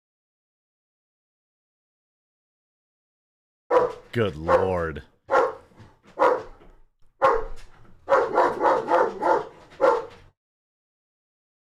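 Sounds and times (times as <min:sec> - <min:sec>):
dog barking: 0:03.7 - 0:06.6, 0:07.2 - 0:10.2
speech: 0:03.8 - 0:05.1.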